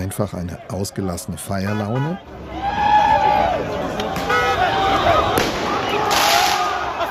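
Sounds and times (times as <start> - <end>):
loud continuous street crowd hubbub: 0.0 - 7.0
speech: 0.1 - 2.8
cars and scooters honking: 1.6 - 2.3, 4.1 - 5.3
firecrackers banging in narrow side streets: 5.2 - 6.9.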